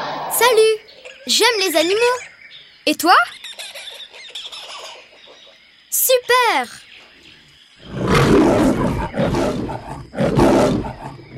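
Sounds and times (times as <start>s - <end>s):
speech: 0.4s - 3.4s, 5.9s - 6.8s
lion roaring: 7.8s - 11.3s.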